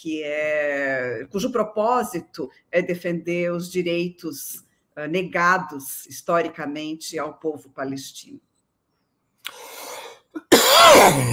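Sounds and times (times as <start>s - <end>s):
speech: 0.0s - 8.5s, 10.4s - 11.3s
person coughing: 10.4s - 11.3s.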